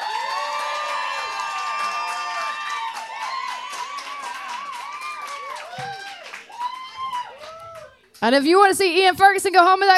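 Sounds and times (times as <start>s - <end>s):
live crowd cheering and shouting to vote for a contestant: 0.0s - 8.0s
speech: 8.2s - 9.9s.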